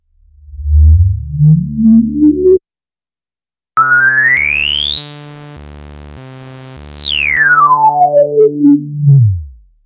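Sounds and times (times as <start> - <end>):
synthesizer saw wave through 24 dB low-pass filter: 0.3 - 2.6, 3.8 - 9.7.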